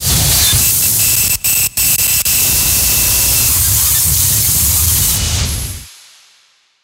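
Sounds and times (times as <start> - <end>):
distorted sonar ping: 0.1 - 4.9.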